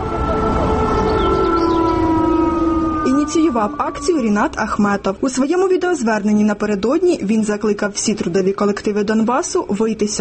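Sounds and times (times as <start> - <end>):
factory sirens sounding at noon: 0.0 - 6.2
voices: 0.0 - 10.1
speech: 3.6 - 10.1.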